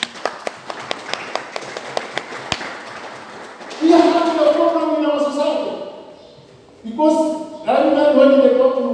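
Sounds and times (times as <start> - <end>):
audience clapping in a steady even rhythm: 0.0 - 5.0
speech: 7.0 - 8.8.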